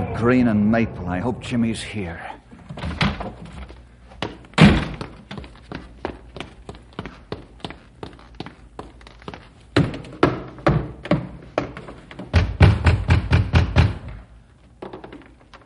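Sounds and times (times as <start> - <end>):
speech: 0.2 - 2.4
knocking on a house's front door: 9.8 - 14.1.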